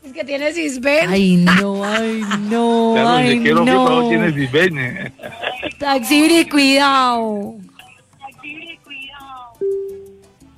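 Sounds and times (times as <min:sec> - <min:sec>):
speech: 0:00.2 - 0:07.6
laughter: 0:01.3 - 0:06.3
phone tone as a call drops: 0:09.6 - 0:10.2.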